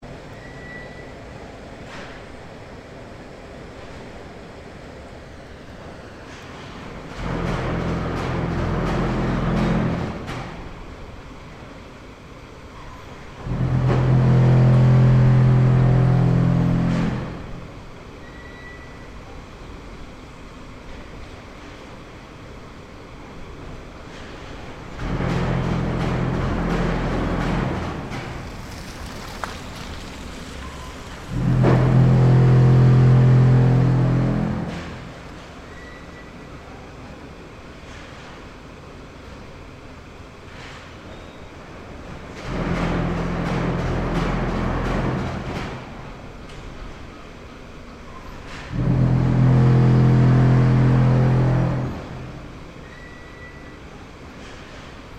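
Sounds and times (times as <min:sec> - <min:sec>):
cement factory noise in Flemalle: 0:00.0 - 0:55.1.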